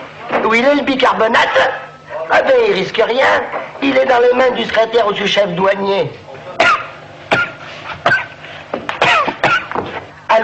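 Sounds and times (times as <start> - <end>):
speech: 0.4 - 6.2
person coughing: 6.6 - 9.9.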